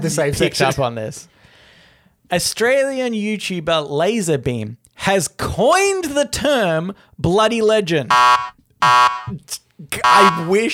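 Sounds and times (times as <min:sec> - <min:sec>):
speech: 0:00.0 - 0:01.4, 0:02.3 - 0:10.7
loud harsh negative buzzer: 0:08.1 - 0:09.4, 0:10.0 - 0:10.5.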